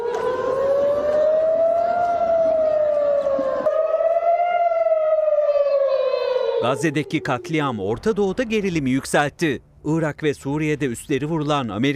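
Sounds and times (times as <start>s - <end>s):
air raid sirens wailing across Tel Aviv Israel during rocket attack: 0.0s - 8.5s
speech: 6.6s - 11.9s.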